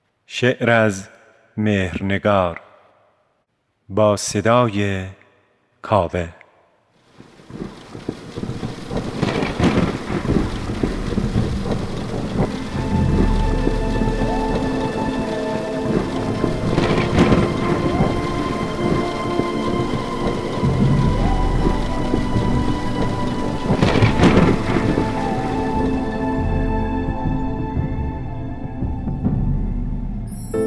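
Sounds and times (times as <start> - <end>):
speech: 0.3 - 2.7, 3.9 - 5.2, 5.8 - 6.4
heavy rain: 7.0 - 30.6
thunder claps: 7.1 - 30.4.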